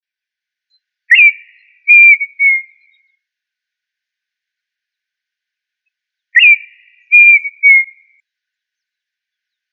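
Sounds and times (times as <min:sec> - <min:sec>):
tinamou calling with pure whistled notes: 0:01.1 - 0:03.0, 0:06.4 - 0:08.0.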